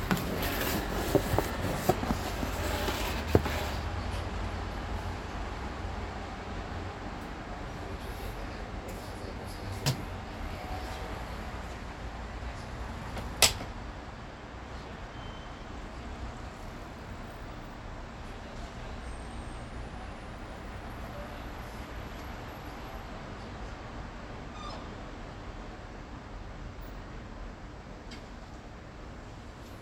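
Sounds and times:
dense traffic noise on a city road: 0.0 - 29.8.

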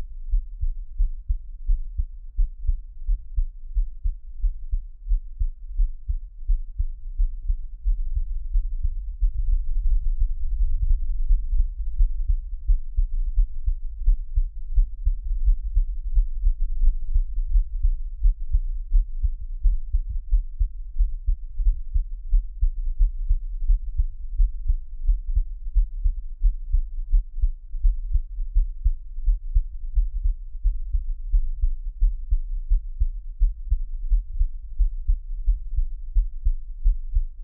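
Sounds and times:
faint low hum: 0.0 - 37.4
heartbeat thumping: 0.0 - 37.4.

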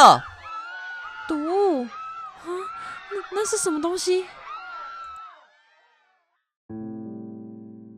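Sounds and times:
speech: 0.0 - 0.3, 1.3 - 4.4
distant crowd screaming and fleeing in panic: 0.0 - 6.4.

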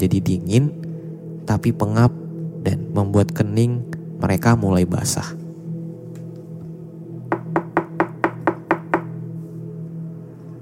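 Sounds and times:
speech: 0.0 - 0.8, 1.5 - 5.4
sharp knocking on a wooden door: 7.3 - 9.1.

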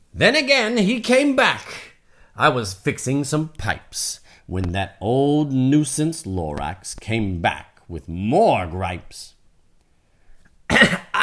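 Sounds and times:
speech: 0.2 - 9.4
person coughing harshly and raspily: 10.7 - 11.2.

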